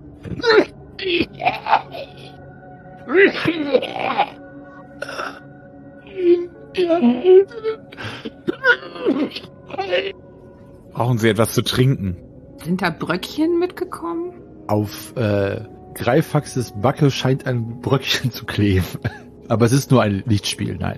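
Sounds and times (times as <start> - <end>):
person coughing and gasping after inhaling fog: 0.2 - 2.4, 3.1 - 4.4, 5.0 - 5.4, 6.8 - 10.2, 18.9 - 19.3
person groaning: 0.2 - 2.4, 3.0 - 10.3
speech: 0.3 - 2.2, 3.1 - 4.4, 6.2 - 10.1, 11.0 - 20.9.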